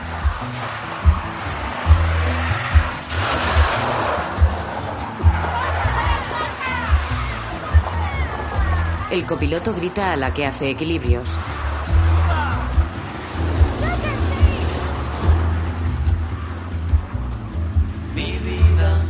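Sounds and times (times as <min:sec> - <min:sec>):
tyre noise: 0:00.0 - 0:09.2, 0:11.3 - 0:18.0
car skidding into a vacant lot: 0:00.0 - 0:09.4, 0:10.9 - 0:18.4
low rhythmic thumps: 0:00.0 - 0:18.8
car engine rumbling: 0:00.0 - 0:19.0
speech: 0:00.4 - 0:01.1, 0:09.1 - 0:11.6.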